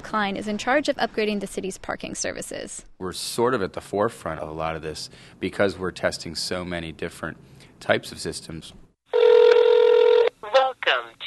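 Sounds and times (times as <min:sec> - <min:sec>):
speech: 0:00.1 - 0:08.8, 0:10.4 - 0:11.2
steady electronic telephone tone of pay-by-phone parking call: 0:09.1 - 0:10.4.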